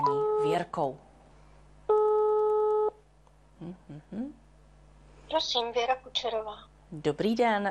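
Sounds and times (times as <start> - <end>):
telephone ringback tone while a call connects: 0.0 - 0.6, 1.9 - 3.0
speech: 0.4 - 1.1, 3.6 - 4.4, 5.3 - 7.6.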